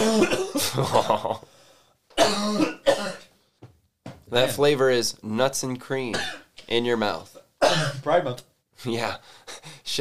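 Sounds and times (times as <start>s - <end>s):
person coughing harshly after taking a vape hit: 0.0s - 1.2s, 2.2s - 3.3s, 6.1s - 6.5s, 7.6s - 8.1s
speech: 0.2s - 1.5s, 4.3s - 9.9s.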